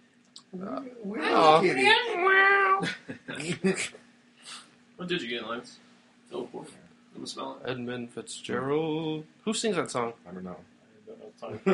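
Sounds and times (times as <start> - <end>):
person imitating a cat meowing: 0.5 - 2.8
speech: 0.5 - 4.1, 5.0 - 11.7.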